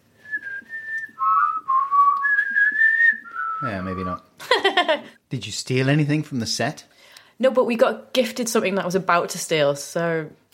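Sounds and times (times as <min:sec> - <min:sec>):
person whistling a movie theme tune: 0:00.2 - 0:04.2
speech: 0:03.6 - 0:10.5.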